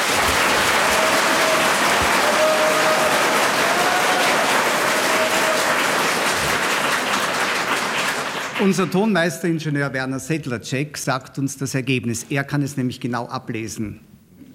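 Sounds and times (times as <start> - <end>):
large audience applause: 0.0 - 9.0
speech: 8.6 - 14.1.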